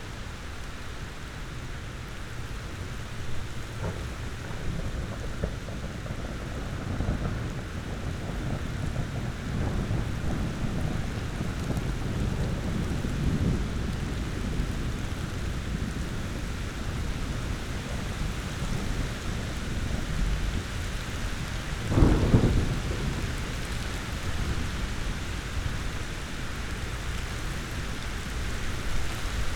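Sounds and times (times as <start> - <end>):
heavy rain in a thunderstorm: 0.0 - 29.5
thunder rumbling in a thunderstorm: 3.2 - 29.5
thunder crack and roll: 3.6 - 15.0, 21.7 - 25.2.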